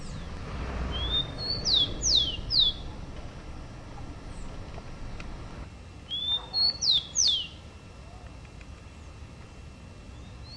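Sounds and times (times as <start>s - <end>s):
Rufous-collared sparrow song phrase: 0.9s - 2.9s, 6.1s - 7.6s, 10.1s - 10.5s.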